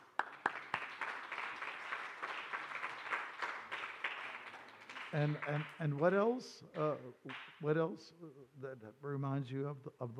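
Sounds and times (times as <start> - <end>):
audience applause: 0.0 - 6.0
speech: 5.1 - 10.1.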